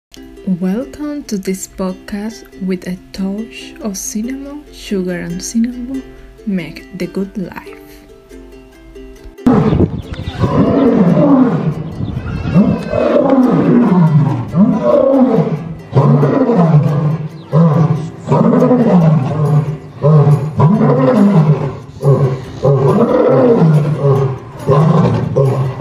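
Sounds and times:
speech: 0:00.4 - 0:07.8
lion roaring: 0:09.4 - 0:25.7.

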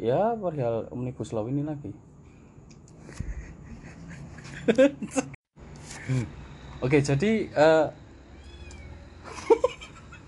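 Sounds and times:
speech: 0:00.0 - 0:02.2, 0:04.7 - 0:05.4, 0:06.1 - 0:08.0
laughter: 0:03.1 - 0:05.4, 0:09.3 - 0:10.2
kitten mewing: 0:08.3 - 0:09.0.

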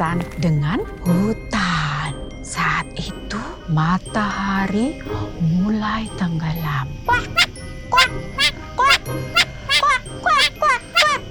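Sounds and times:
speech: 0:00.0 - 0:01.6, 0:02.8 - 0:09.4
duck quacking: 0:07.1 - 0:11.2.

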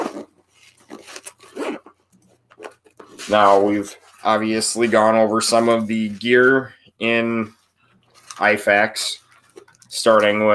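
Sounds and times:
zipper on a pouch being opened: 0:00.9 - 0:02.0
speech: 0:03.3 - 0:07.6, 0:08.4 - 0:09.2, 0:09.9 - 0:10.5.

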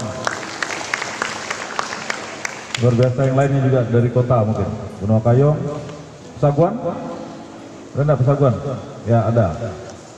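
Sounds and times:
audience applauding: 0:00.0 - 0:03.4
speech: 0:02.8 - 0:07.1, 0:07.9 - 0:09.8.

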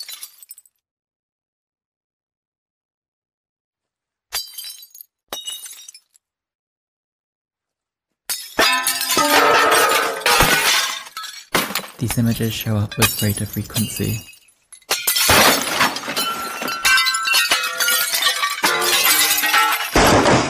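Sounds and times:
glass shattering and tinkling shards: 0:00.0 - 0:00.8, 0:04.3 - 0:06.2, 0:08.3 - 0:20.4
phone screen glass cracking sharply: 0:08.4 - 0:12.1, 0:13.0 - 0:20.4
speech: 0:12.1 - 0:14.3.

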